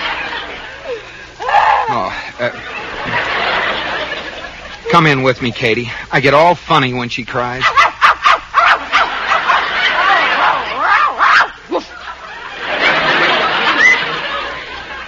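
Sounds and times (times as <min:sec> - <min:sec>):
laughter: 0:00.0 - 0:05.8, 0:07.6 - 0:15.0
speech: 0:05.0 - 0:07.8
dog barking: 0:07.6 - 0:09.6, 0:10.8 - 0:11.6.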